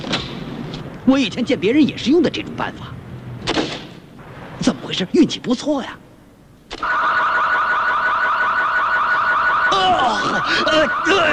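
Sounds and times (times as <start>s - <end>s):
speech: 1.0s - 3.0s, 4.6s - 6.0s, 9.8s - 11.3s
car alarm siren: 6.8s - 11.3s.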